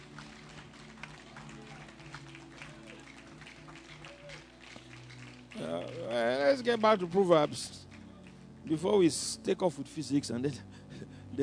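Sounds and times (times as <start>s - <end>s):
audience clapping in a dense sustained round of applause: 0.0s - 7.1s
speech: 6.6s - 7.8s, 8.7s - 10.7s.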